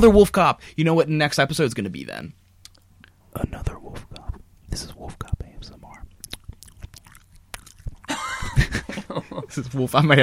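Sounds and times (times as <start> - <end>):
speech: 0.0 - 2.4, 3.4 - 4.1, 4.7 - 5.4, 9.4 - 10.2
dry mouth lip and tongue clicks and smacks: 2.6 - 3.2, 3.9 - 8.1
laughter: 8.1 - 9.8.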